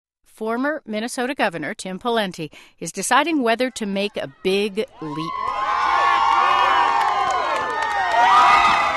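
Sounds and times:
speech: 0:00.4 - 0:05.6
large crowd cheering and shouting outdoors at an ice fishing festival: 0:04.0 - 0:08.9
scattered claps: 0:06.2 - 0:08.9.

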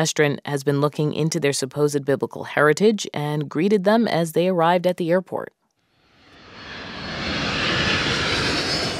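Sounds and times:
speech: 0:00.0 - 0:05.6
jet airplane engine roaring at an airport: 0:06.1 - 0:08.9.

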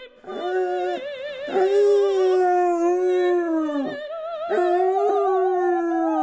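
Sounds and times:
opera music: 0:00.0 - 0:06.2
basset hounds howling: 0:00.4 - 0:06.2.

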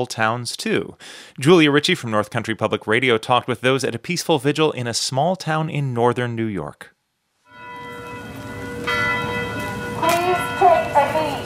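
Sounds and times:
speech: 0:00.0 - 0:07.0
church bells chiming across a village main square: 0:07.5 - 0:11.4.

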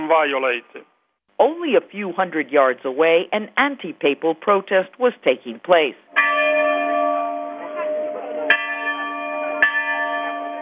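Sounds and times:
speech: 0:00.1 - 0:06.0
church bell tolling in mourning: 0:06.1 - 0:10.6.

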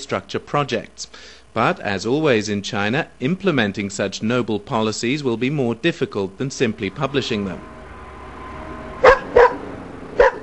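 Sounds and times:
speech: 0:00.0 - 0:07.8
dog barking in a Chinese village north of Beijing: 0:09.0 - 0:09.6, 0:10.2 - 0:10.4.

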